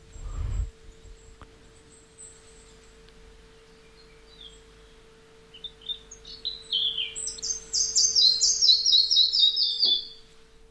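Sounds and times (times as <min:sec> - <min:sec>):
red-breasted flycatcher song played back: 0:00.0 - 0:10.6.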